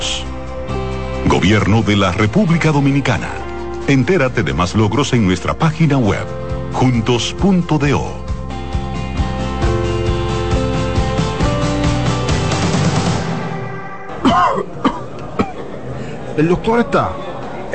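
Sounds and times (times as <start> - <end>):
upbeat music with a steady beat: 0.0 - 14.6
speech: 1.4 - 8.3, 16.4 - 17.7
person coughing harshly: 14.1 - 15.8.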